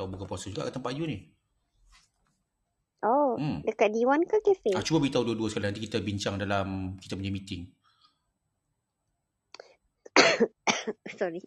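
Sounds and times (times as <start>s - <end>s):
speech: 0.0s - 1.4s, 3.0s - 7.8s, 10.4s - 11.4s
person clearing their throat: 10.1s - 11.0s.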